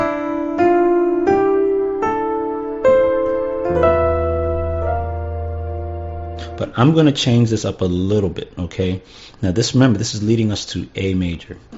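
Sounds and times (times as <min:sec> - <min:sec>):
piano B flat chord with an E in the left hand: 0:00.0 - 0:08.1
deep sustained bass piano note: 0:02.8 - 0:06.8
speech: 0:06.7 - 0:11.7.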